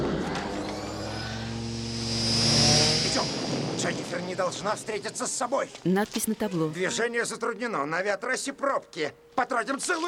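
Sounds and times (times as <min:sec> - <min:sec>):
futuristic flying police car engine drone departing: 0:00.0 - 0:05.2
thin high whine of flying police car: 0:00.4 - 0:05.3
speech: 0:03.9 - 0:10.0.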